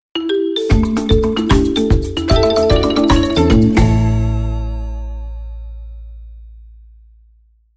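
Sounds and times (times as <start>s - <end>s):
marimba jingle: 0.2s - 5.7s.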